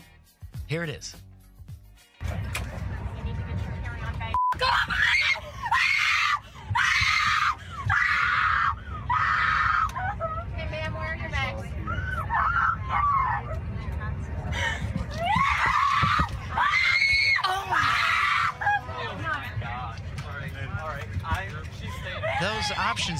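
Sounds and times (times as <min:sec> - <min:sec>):
speech: 0:00.7 - 0:01.3, 0:04.6 - 0:05.2, 0:22.7 - 0:23.1
low airplane cabin drone in flight: 0:02.2 - 0:23.1
woman screaming on an airplane in flight: 0:04.6 - 0:10.2, 0:15.2 - 0:18.8.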